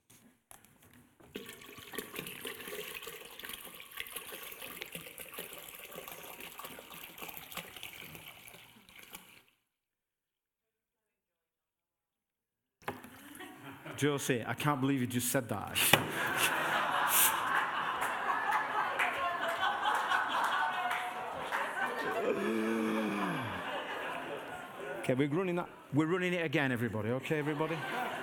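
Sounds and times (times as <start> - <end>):
liquid pouring into a container: 1.2 - 9.6
laughter: 13.2 - 14.2, 16.0 - 26.0, 27.1 - 28.2
speech: 14.0 - 16.6, 25.1 - 28.0.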